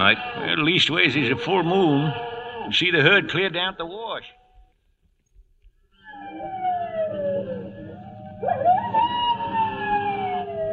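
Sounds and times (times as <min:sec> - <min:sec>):
coyote howling: 0:00.0 - 0:03.5, 0:06.0 - 0:10.7
speech: 0:00.0 - 0:04.4.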